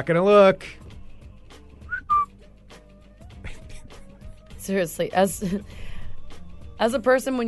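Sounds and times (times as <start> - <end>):
speech: 0.0 - 0.8, 4.7 - 5.8, 6.8 - 7.4
man whistling two short notes in the neighborhood: 1.9 - 2.3.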